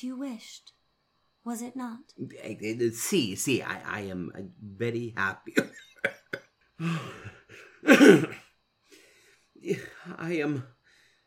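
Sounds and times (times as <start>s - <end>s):
speech: 0.0s - 0.8s, 1.4s - 8.4s, 9.6s - 10.8s
person coughing: 7.8s - 8.5s.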